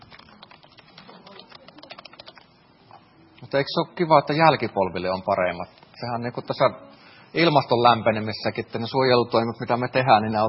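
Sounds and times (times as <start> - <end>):
person typing a note on a computer keyboard: 0.0 - 2.5
speech: 3.5 - 10.4.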